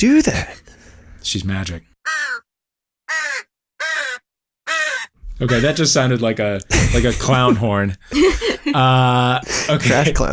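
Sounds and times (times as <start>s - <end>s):
speech: 0.0s - 0.6s, 1.2s - 1.9s, 5.4s - 10.3s
crow cawing: 2.0s - 2.5s, 3.1s - 5.2s
laughter: 6.7s - 10.3s.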